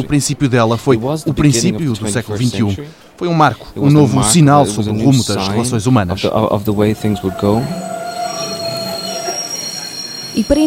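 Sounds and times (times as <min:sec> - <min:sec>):
speech: 0:00.0 - 0:07.9, 0:10.4 - 0:10.6
train wheels squealing on rails: 0:06.6 - 0:10.6.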